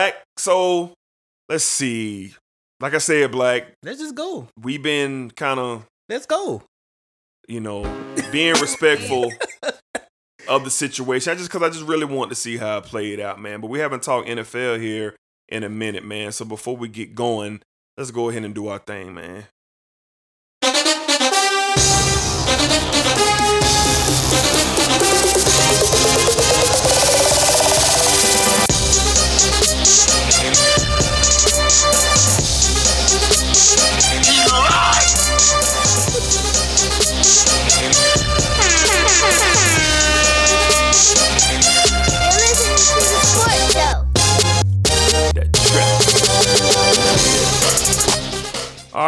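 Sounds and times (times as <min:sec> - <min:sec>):
speech: 0:00.0 - 0:06.7, 0:07.5 - 0:09.8, 0:10.4 - 0:19.6
loud bass-heavy podcast theme music: 0:07.8 - 0:08.9, 0:20.6 - 0:49.0
blaring air horn blasts: 0:07.8 - 0:09.0, 0:20.6 - 0:44.6
laughter: 0:07.8 - 0:10.7, 0:34.4 - 0:36.3, 0:38.5 - 0:41.2, 0:42.2 - 0:43.9.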